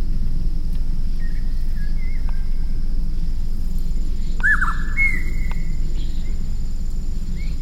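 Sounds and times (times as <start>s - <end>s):
low background rumble: 0.0s - 7.6s
grey-sided scimitar babbler whistling, Pomatorhinus swinhoei, in Jiangxi, China: 1.2s - 2.6s, 4.1s - 6.4s.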